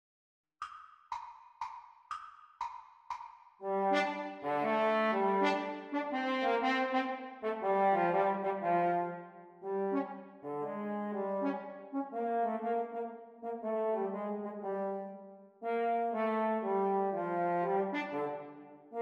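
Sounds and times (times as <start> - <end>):
French horn duets: 3.6 - 18.4.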